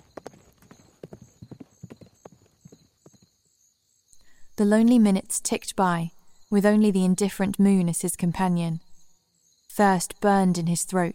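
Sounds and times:
horse hooves clip-clopping as a rider rides off: 0.0s - 3.4s
speech: 4.6s - 8.8s, 9.7s - 11.1s.

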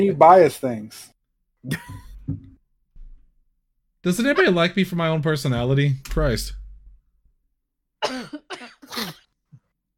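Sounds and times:
speech: 0.0s - 2.5s, 4.0s - 6.6s, 8.0s - 8.4s
harsh coughs: 8.0s - 9.3s.

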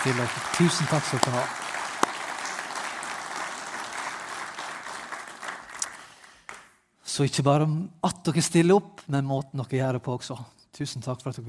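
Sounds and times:
speech: 0.0s - 1.6s, 7.2s - 11.4s
audience applauding to thank worship singing leaders: 0.0s - 6.8s.

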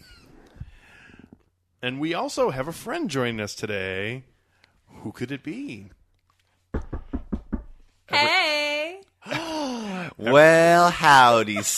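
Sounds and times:
speech: 1.8s - 4.3s, 5.0s - 6.0s, 10.2s - 11.7s
knocking: 6.7s - 7.8s.

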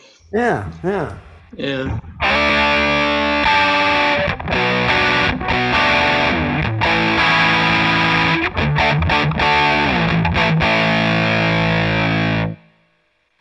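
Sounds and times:
speech: 0.3s - 3.0s
fuzz-distorted electric guitar playing sustained chords: 1.9s - 12.6s.

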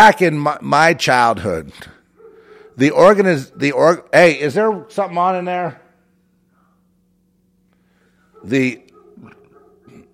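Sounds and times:
speech: 0.0s - 2.0s, 2.8s - 5.8s, 8.4s - 9.4s
steady low hum: 0.0s - 10.1s
dog barking: 2.2s - 4.0s, 8.3s - 10.1s.

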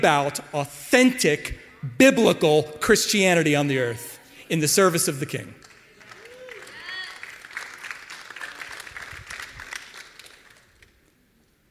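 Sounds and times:
speech: 0.0s - 5.6s
audience applause: 5.6s - 11.2s
audience cheers and whoops: 6.1s - 7.3s.

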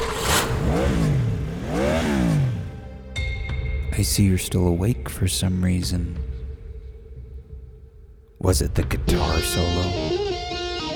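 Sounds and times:
Jeep engine revving: 0.0s - 3.3s
speech: 4.0s - 6.3s, 8.4s - 10.2s.

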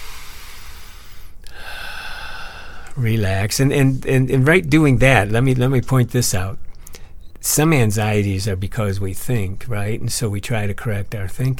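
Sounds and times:
deep cleansing breath: 0.0s - 3.0s
speech: 3.0s - 6.6s, 7.4s - 11.5s.

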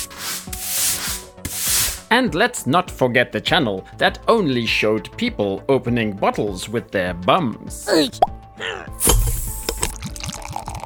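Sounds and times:
broom bristles sweeping broken pieces across a hard floor: 0.0s - 2.1s
speech: 2.1s - 9.1s.

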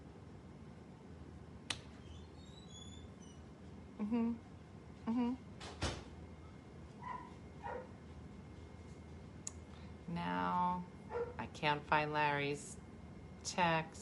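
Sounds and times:
steady hum: 0.0s - 14.0s
speech: 4.0s - 4.5s, 5.1s - 5.5s, 11.6s - 12.8s, 13.4s - 14.0s
dog barking to be let in: 7.0s - 8.0s, 11.1s - 11.4s.

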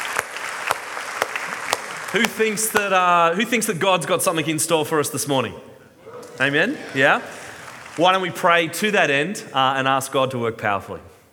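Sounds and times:
applause from a church congregation: 0.0s - 3.2s, 6.1s - 8.4s
laughter: 1.5s - 10.4s
speech: 2.1s - 5.7s, 6.4s - 7.4s, 8.0s - 11.1s.

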